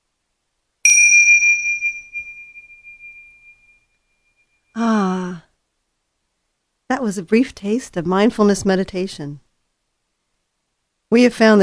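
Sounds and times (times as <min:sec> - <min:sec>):
meditation chime struck, bright high ringing tone: 0:00.8 - 0:04.8
speech: 0:07.0 - 0:09.4, 0:11.1 - 0:11.6.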